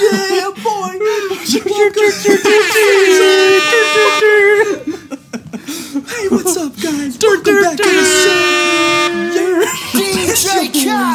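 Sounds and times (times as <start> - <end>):
speech: 0.0 - 3.1
laughter: 0.0 - 7.1, 7.8 - 10.6
voice imitating blaring air horns: 2.3 - 4.6, 7.8 - 9.8.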